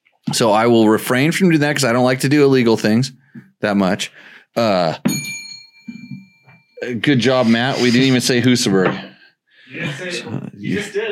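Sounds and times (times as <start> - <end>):
speech: 0.3 - 5.4, 6.8 - 9.1, 9.7 - 11.1
bell struck with bright ringing overtones: 5.1 - 6.9.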